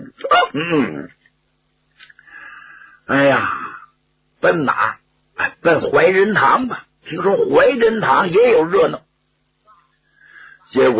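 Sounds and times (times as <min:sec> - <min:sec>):
man imitating a full-bellied burp after eating: 0:00.2 - 0:01.1
speech: 0:00.5 - 0:01.2, 0:03.1 - 0:03.7, 0:04.4 - 0:09.1, 0:10.7 - 0:10.9.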